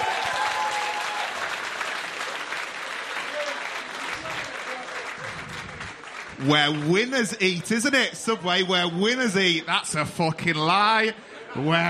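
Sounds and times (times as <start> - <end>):
audience applauding: 0.0 - 8.9
speech: 6.4 - 11.8.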